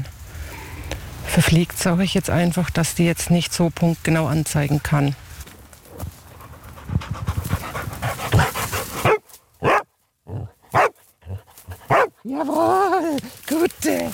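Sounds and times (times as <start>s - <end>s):
rustling in rocky ground: 0.0s - 14.1s
speech: 1.3s - 5.2s
detection dog panting: 5.9s - 9.8s, 10.4s - 12.3s
detection dog barking to signal a scent: 8.3s - 9.9s, 10.7s - 11.0s, 11.8s - 12.2s.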